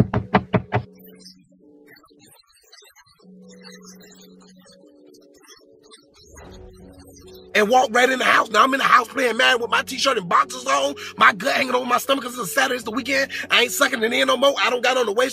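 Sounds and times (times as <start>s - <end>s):
knocking on a door: 0.0s - 0.9s
speech: 7.6s - 15.3s.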